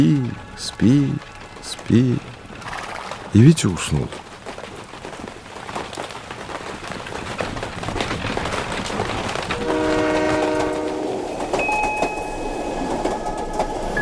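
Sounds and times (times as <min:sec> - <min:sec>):
speech: 0:00.0 - 0:02.3, 0:03.3 - 0:04.2
train rolling along rails with rumble and rhythmic clatter: 0:00.0 - 0:14.0
long loud two-tone train horn: 0:09.6 - 0:11.2.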